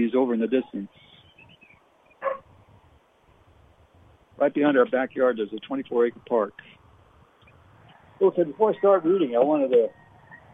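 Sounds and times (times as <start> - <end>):
speech: 0.0 - 1.1, 4.4 - 6.8, 8.2 - 10.0
faint noise: 0.0 - 10.5
dog barking in a backyard: 2.2 - 2.5.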